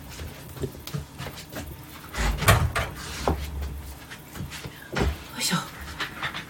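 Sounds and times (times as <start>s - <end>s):
knocks and scrapes of a chair swapped and furniture shifted: 1.2s - 5.2s.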